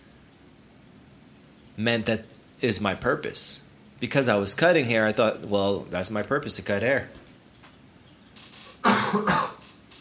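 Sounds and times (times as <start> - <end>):
speech: 1.8 - 7.2
harsh raspy coughs: 8.8 - 9.7.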